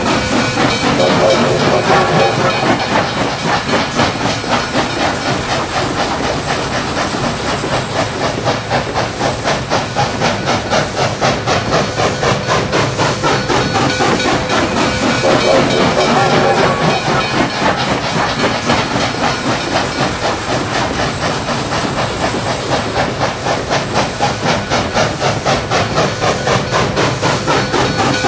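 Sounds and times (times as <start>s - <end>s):
slow train: 0.0s - 28.2s.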